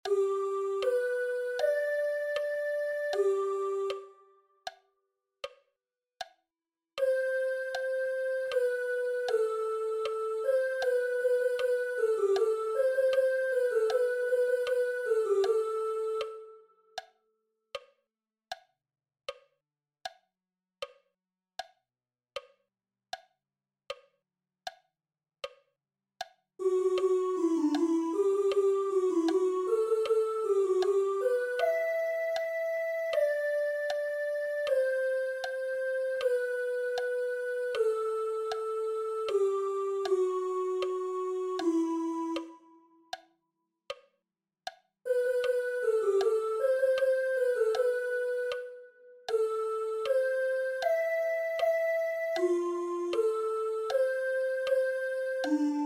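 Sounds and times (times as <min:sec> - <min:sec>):
sopranos singing: 0:00.0 - 0:04.1, 0:07.0 - 0:16.5, 0:26.6 - 0:42.7, 0:45.1 - 0:55.8.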